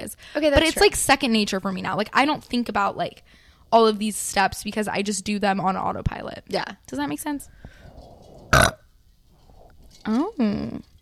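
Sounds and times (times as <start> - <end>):
speech: 0.3 - 7.8, 10.0 - 10.9
burp: 8.5 - 8.9.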